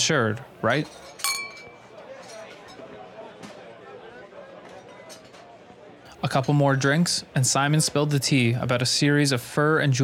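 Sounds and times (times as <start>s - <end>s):
speech: 0.0s - 1.2s, 6.2s - 10.0s
glasses clinking in a toast: 1.1s - 2.0s
steady murmur of crowd chatter: 1.3s - 6.1s.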